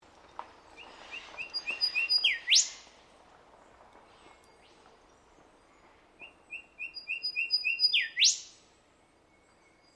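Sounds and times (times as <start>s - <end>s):
whistled calls of an Australian bird: 0.8s - 2.9s, 6.2s - 8.6s.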